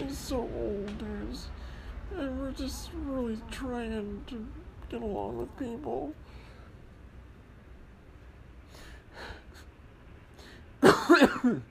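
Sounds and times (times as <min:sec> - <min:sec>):
speech: 0:00.1 - 0:06.3, 0:10.8 - 0:11.6
person coughing: 0:10.8 - 0:11.6.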